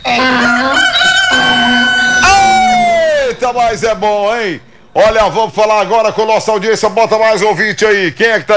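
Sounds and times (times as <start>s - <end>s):
rooster crowing: 0.0s - 3.5s
speech: 3.6s - 8.5s.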